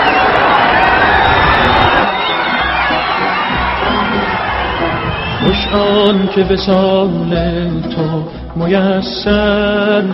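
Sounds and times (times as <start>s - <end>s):
huge crowd shouting and cheering as motorcade car arrives: 0.0s - 7.8s
speech: 5.7s - 10.1s.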